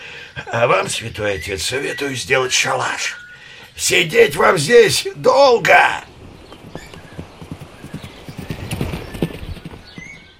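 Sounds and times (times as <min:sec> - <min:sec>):
speech: 0:00.4 - 0:03.2, 0:03.8 - 0:06.1
horse hooves clopping on a hard surface: 0:06.3 - 0:10.3.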